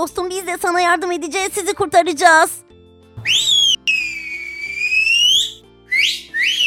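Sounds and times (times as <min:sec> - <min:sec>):
speech: 0:00.0 - 0:02.6
loud whistle with long steady note and upward-swooping chirps: 0:03.2 - 0:06.6.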